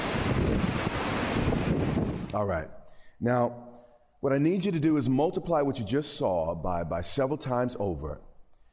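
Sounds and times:
waves surging on the Sea of Galilee: 0:00.0 - 0:02.3
stormy wind roaring across the Sea of Galilee: 0:00.0 - 0:02.5
speech: 0:02.3 - 0:08.3.

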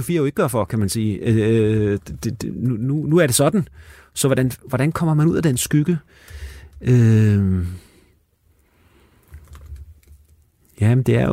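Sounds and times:
speech: 0:00.0 - 0:07.9, 0:10.8 - 0:11.3
typing on a computer keyboard: 0:09.2 - 0:10.4.

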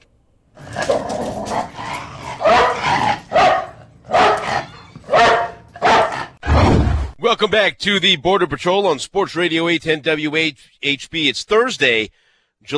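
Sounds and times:
several dogs barking: 0:00.6 - 0:06.4
speech: 0:07.4 - 0:12.7.

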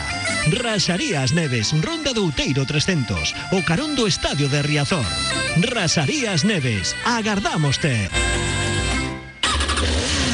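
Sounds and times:
speech: 0:00.5 - 0:08.5
motorcycle engine revving: 0:09.4 - 0:10.3.

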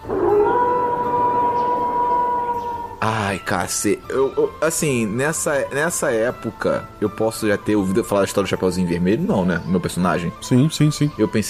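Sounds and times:
distant wolf howl: 0:00.0 - 0:03.4
speech: 0:03.3 - 0:11.4.

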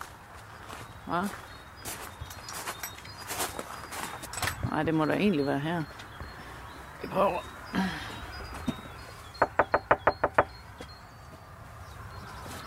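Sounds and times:
speech: 0:01.1 - 0:01.5, 0:04.8 - 0:06.0, 0:07.0 - 0:08.0
sharp crisp knocking on a door: 0:09.4 - 0:10.6.

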